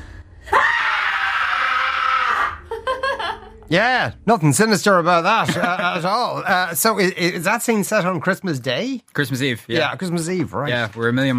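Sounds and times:
woman screaming: 0.5s - 2.7s
laughter: 2.6s - 3.7s, 5.3s - 6.4s
speech: 3.7s - 11.3s.

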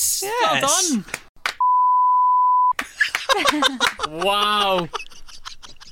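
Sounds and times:
speech: 0.2s - 1.2s, 3.5s - 5.0s
steady loud censor bleep tone masking a word: 1.6s - 2.7s
laughter: 2.8s - 5.9s.

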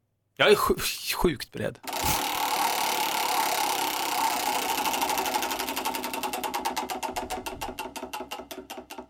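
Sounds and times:
speech: 0.4s - 2.2s
large prize wheel spinning and clicking: 1.8s - 9.0s.

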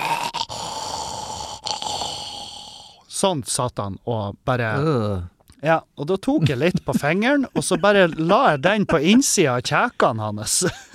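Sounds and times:
person imitating snoring with raspy rattling breath: 0.0s - 3.0s
speech: 3.2s - 10.9s.

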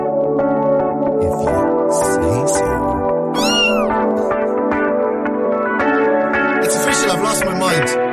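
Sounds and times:
music: 0.0s - 8.1s
person imitating a cat with a drawn-out meow: 3.4s - 4.0s.

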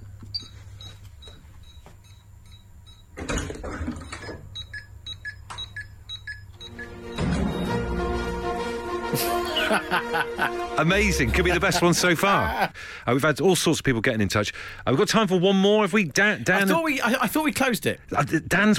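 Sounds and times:
home burglar alarm beeping: 0.3s - 3.3s, 4.0s - 8.4s
song from a film: 6.7s - 11.7s
laughter: 9.1s - 12.8s
speech: 9.2s - 18.7s.

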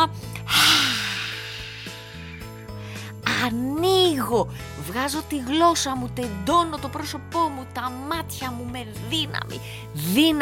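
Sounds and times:
speech: 0.0s - 0.6s, 3.4s - 10.4s
sharp inhalation during a face yoga exercise: 0.4s - 3.2s.

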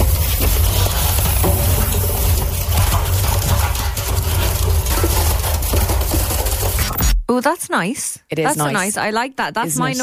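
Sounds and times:
machine crushing and flattening wooden drawers: 0.0s - 7.0s
speech: 7.4s - 10.0s.

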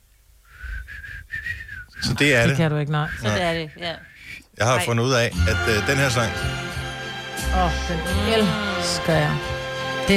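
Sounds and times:
person attempting to whistle a short breathy tune: 0.5s - 4.5s
speech: 2.1s - 6.6s, 7.6s - 10.1s.

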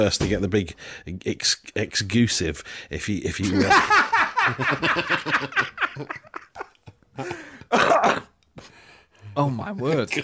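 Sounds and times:
speech: 0.0s - 6.4s, 9.4s - 10.2s
laughter: 3.4s - 7.6s, 9.8s - 10.2s
deep harsh cough: 7.2s - 8.4s.

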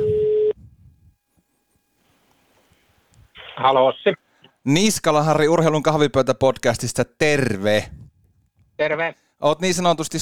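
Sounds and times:
telephone ringback tone while placing a call: 0.0s - 0.5s
speech: 3.6s - 8.0s, 8.8s - 10.2s.

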